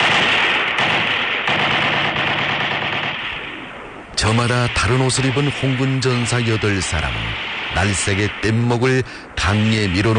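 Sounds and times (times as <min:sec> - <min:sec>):
heavy machine-gun fire in a battle: 0:00.0 - 0:03.4
speech: 0:04.3 - 0:10.1.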